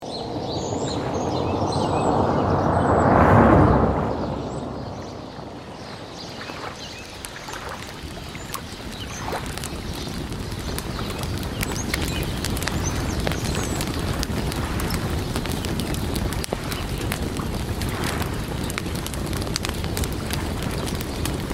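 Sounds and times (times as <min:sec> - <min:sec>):
lake water: 0:00.0 - 0:21.5
campfire by the lake: 0:05.0 - 0:21.5.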